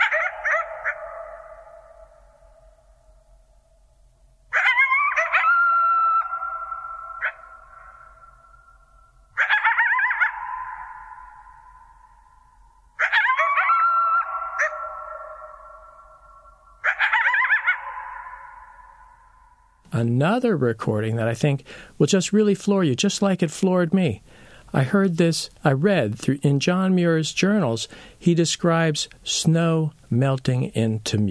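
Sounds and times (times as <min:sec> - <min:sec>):
coyotes howling and yipping in a high-pitched chorus: 0:00.0 - 0:02.8, 0:04.5 - 0:19.8
speech: 0:20.0 - 0:31.2.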